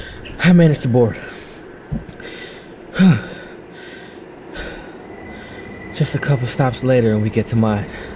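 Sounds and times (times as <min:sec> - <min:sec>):
speech: 0:00.4 - 0:01.3, 0:03.0 - 0:03.3, 0:06.0 - 0:08.1
heavy panting breaths after running: 0:02.2 - 0:05.6.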